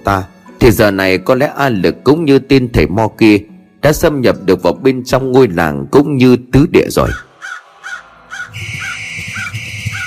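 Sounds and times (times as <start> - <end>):
speech: 0.0 - 7.3
crow cawing: 7.0 - 10.0.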